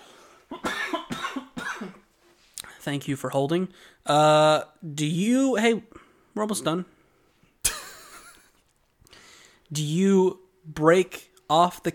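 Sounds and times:
harsh coughs: 0.5s - 2.1s
speech: 2.8s - 7.0s, 9.7s - 11.9s.

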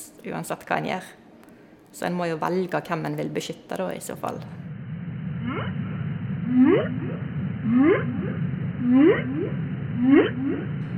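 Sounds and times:
speech: 0.2s - 1.2s, 2.0s - 4.6s, 6.5s - 10.9s
constant low rumble of the sea: 4.6s - 10.9s
whale song underwater: 5.4s - 10.9s.

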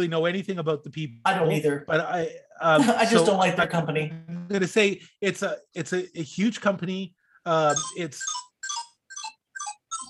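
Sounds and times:
speech: 0.0s - 8.5s
laughter: 2.7s - 3.3s
mobile phone ringtone with short repeating electronic melody: 7.7s - 10.0s.

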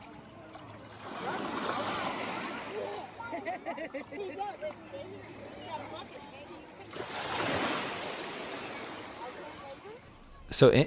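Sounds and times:
ocean waves washing in: 0.8s - 3.8s, 6.9s - 10.1s
laughter: 1.1s - 5.8s
speech: 3.9s - 7.3s, 10.6s - 10.8s.

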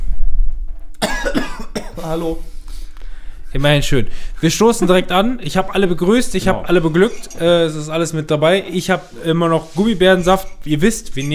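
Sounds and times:
person coughing: 1.0s - 2.4s, 6.4s - 7.8s
speech: 1.3s - 2.6s, 3.5s - 11.3s.

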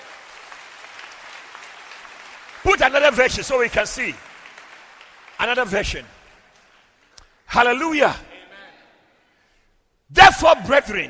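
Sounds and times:
congregation clapping hands during a church service: 0.0s - 7.4s
speech: 2.6s - 4.3s, 5.4s - 6.2s, 7.5s - 8.3s, 10.1s - 11.0s.

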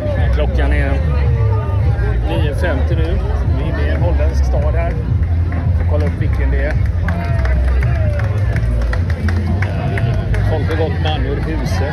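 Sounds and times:
street crowd cheering and chattering as marchers pass in a Dutch town: 0.0s - 11.9s
street crowd clapping for marchers: 4.4s - 11.9s.

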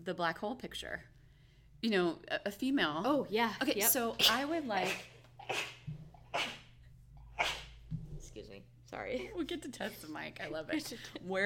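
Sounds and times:
speech: 0.0s - 1.2s, 1.8s - 6.6s, 8.9s - 11.4s
person sneezing: 4.2s - 6.7s, 7.3s - 7.7s.

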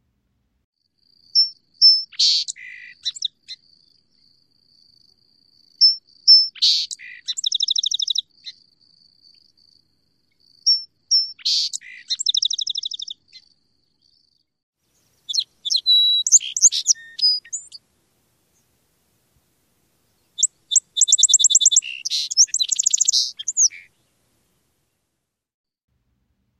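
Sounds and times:
song sparrow singing: 1.1s - 17.8s, 20.0s - 24.2s.

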